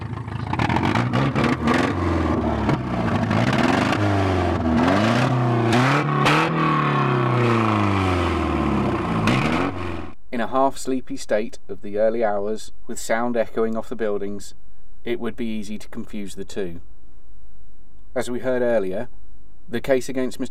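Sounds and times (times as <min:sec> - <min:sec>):
car engine with a faulty exhaust pipe revving and accelerating: 0:00.0 - 0:10.2
speech: 0:10.4 - 0:16.9, 0:18.1 - 0:20.4.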